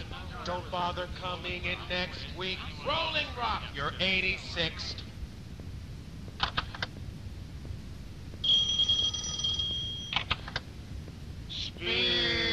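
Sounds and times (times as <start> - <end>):
speech: 0.4 - 5.1, 11.8 - 12.4
answering machine beep: 8.4 - 10.2
high tone: 8.4 - 10.2.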